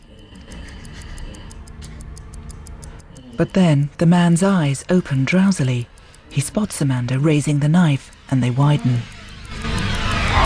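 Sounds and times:
timer ticking: 0.0s - 10.4s
speech: 3.4s - 9.1s.

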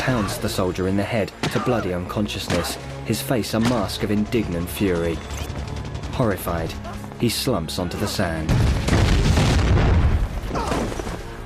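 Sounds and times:
speech: 0.0s - 8.9s
mortar fire exploding across a battleground: 8.5s - 11.2s.

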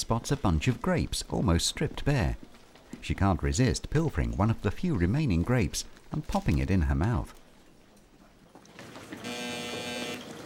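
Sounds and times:
speech: 0.0s - 7.4s
electronic alarm buzzing tone: 9.2s - 10.3s.

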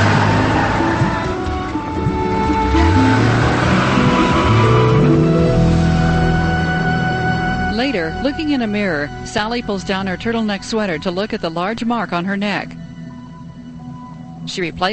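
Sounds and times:
car driving off and accelerating: 0.0s - 9.2s
speech: 7.9s - 12.8s, 14.4s - 14.9s.

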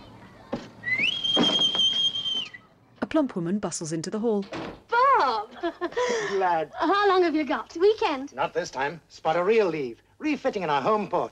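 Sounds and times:
sailor in naval uniform whistling a greeting in a house's front hall: 0.8s - 2.7s
speech: 3.2s - 11.2s.

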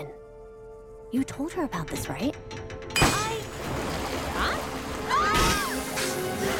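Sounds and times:
speech: 1.1s - 2.8s
water bursting and spraying from pipes: 3.6s - 6.5s.

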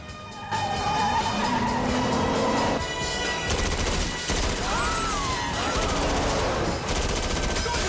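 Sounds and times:
car noise during a car chase: 0.0s - 2.8s
tyres skidding: 0.0s - 3.0s
submachine gun fire during a car chase: 3.5s - 7.8s.

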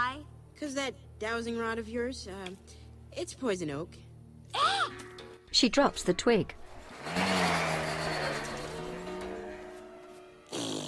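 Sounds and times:
speech: 0.6s - 4.8s, 5.5s - 7.5s
car engine humming as the car drives away: 5.8s - 10.5s.

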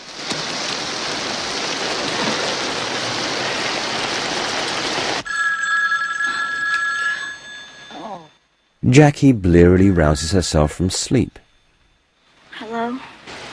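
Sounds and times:
heavy rain: 0.0s - 5.2s, 12.6s - 13.5s
telephone bell ringing: 5.2s - 8.7s
speech: 8.8s - 11.4s.

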